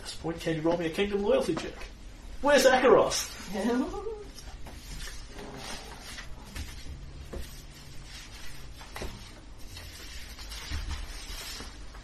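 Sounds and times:
speech: 0:00.2 - 0:04.1
many pieces of paper shuffling and rustling: 0:04.4 - 0:12.0.

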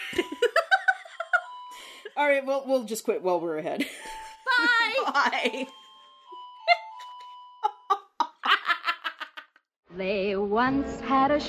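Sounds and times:
rhythmic giggling laughter: 0:00.0 - 0:02.1, 0:03.8 - 0:09.6
doorbell chime rung by a dog: 0:00.0 - 0:08.0
speech: 0:02.2 - 0:05.8, 0:10.0 - 0:11.4.

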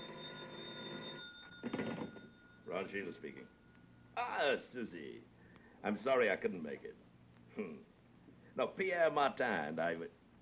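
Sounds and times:
telephone bell ringing: 0:00.0 - 0:04.0
speech: 0:02.7 - 0:03.6, 0:04.2 - 0:07.0, 0:07.6 - 0:07.9, 0:08.6 - 0:10.2.

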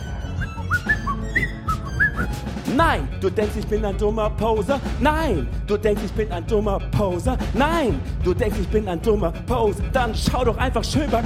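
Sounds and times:
person whistling a tune: 0:00.0 - 0:02.5
low-end music bed: 0:00.0 - 0:11.2
speech: 0:02.7 - 0:11.2.

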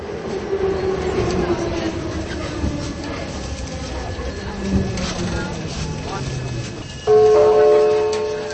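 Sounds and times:
metro train arriving at a station with rail clatter: 0:00.0 - 0:08.5
metro station chime of sustained tones: 0:06.8 - 0:08.5.

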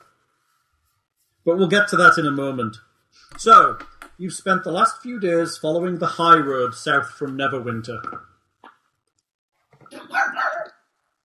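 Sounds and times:
speech: 0:01.5 - 0:08.3
dogs barking and yipping along a road at passers-by: 0:09.9 - 0:10.7.

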